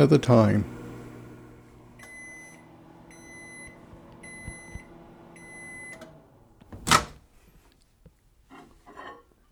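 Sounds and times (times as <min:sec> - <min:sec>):
speech: 0:00.0 - 0:00.8
microwave oven humming: 0:00.0 - 0:07.1
sharp clack of microwave door popping open: 0:06.7 - 0:07.2.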